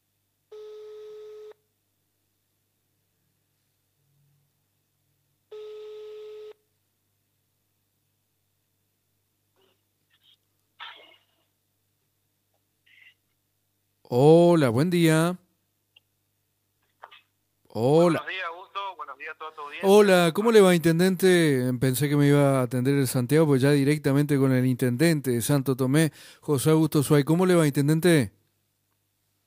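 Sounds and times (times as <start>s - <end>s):
buzzy telephone ringback tones of an outgoing call: 0.5s - 1.6s, 5.5s - 6.6s
speech: 14.1s - 15.4s, 17.8s - 18.5s, 19.1s - 28.4s.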